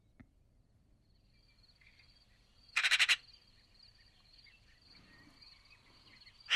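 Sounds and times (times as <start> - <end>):
Eurasian magpie Pica pica chattering harshly: 2.8 - 3.2.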